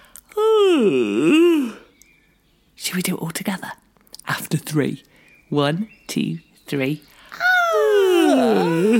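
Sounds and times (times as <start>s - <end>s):
long drawn-out human yawn: 0.4s - 1.8s, 7.3s - 8.9s
speech: 0.8s - 1.5s, 3.0s - 3.8s, 4.5s - 7.4s, 8.4s - 8.9s.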